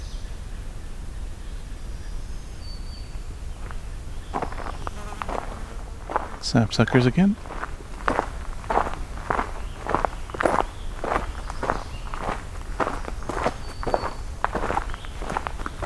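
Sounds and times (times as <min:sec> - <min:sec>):
footsteps crunching along a forestry road in the woods: 0:03.5 - 0:15.8
speech: 0:06.4 - 0:07.6.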